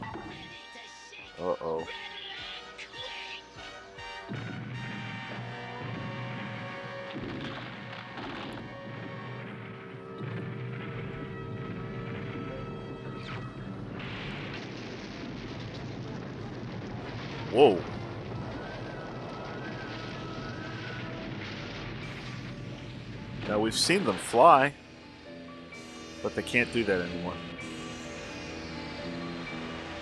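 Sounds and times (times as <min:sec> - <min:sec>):
speech: 0:01.4 - 0:02.2, 0:17.6 - 0:17.9, 0:23.7 - 0:24.8, 0:26.2 - 0:27.7
cannon fire barrage: 0:03.7 - 0:30.0
explosions: 0:04.1 - 0:30.0.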